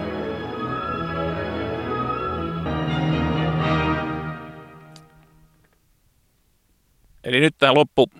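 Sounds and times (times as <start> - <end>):
full orchestral music with simulated concert hall acoustics: 0.0 - 5.6
speech: 7.2 - 8.1.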